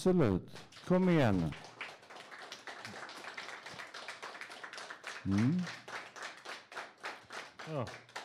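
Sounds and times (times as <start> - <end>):
speech: 0.0 - 1.7, 5.2 - 5.8, 7.7 - 8.1
small group clapping in applause: 0.2 - 8.2
short murmured voice: 5.3 - 5.7.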